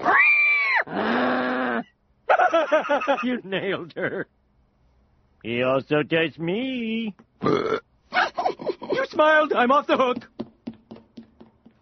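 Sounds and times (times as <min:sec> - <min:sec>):
pig squealing in imitation of a person: 0:00.0 - 0:01.8
speech: 0:02.6 - 0:04.4, 0:05.4 - 0:07.8, 0:09.2 - 0:10.3.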